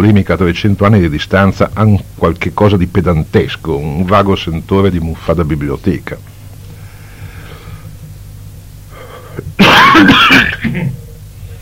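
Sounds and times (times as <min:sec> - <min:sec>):
speech: 0:00.0 - 0:06.3, 0:09.6 - 0:11.0
teacher with bronchitis coughing and throat clearing: 0:09.4 - 0:11.1.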